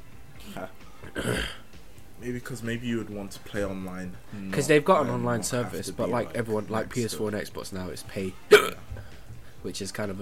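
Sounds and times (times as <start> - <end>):
speech: 0.6 - 1.5, 2.2 - 10.2
person hiccuping: 1.1 - 1.6, 8.5 - 8.8.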